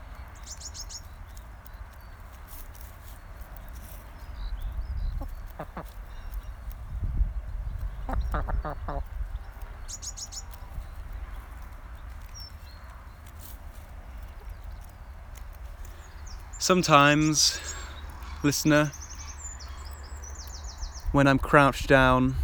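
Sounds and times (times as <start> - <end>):
bird chirps overhead: 0.0 - 21.2
low outdoor rumble: 2.1 - 22.4
hens clucking in a hen garden field: 3.5 - 6.8, 7.6 - 22.1
speech: 8.4 - 9.1, 9.9 - 10.4, 16.6 - 17.8, 18.4 - 19.0, 21.2 - 22.4.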